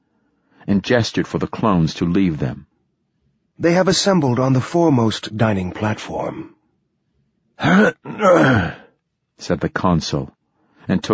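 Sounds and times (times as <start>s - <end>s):
speech: 0.7s - 2.7s, 3.6s - 6.6s, 7.6s - 8.8s, 9.4s - 11.1s
person imitating a man clearing his throat: 7.6s - 8.9s.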